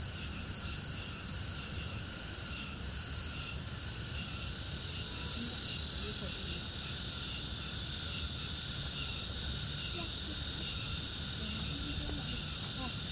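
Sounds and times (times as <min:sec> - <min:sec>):
crickets chirping in summer at the Old Summer Palace: 0:00.0 - 0:13.1.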